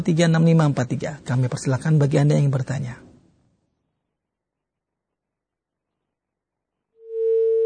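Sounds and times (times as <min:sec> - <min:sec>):
speech: 0:00.0 - 0:03.1
phone line tone after call disconnects: 0:07.0 - 0:07.6.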